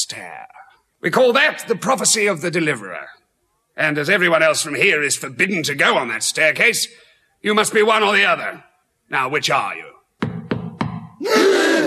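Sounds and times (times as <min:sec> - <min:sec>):
speech: 0:00.1 - 0:03.2, 0:03.8 - 0:10.0, 0:11.2 - 0:11.8
firm knocks on a door: 0:10.2 - 0:11.2.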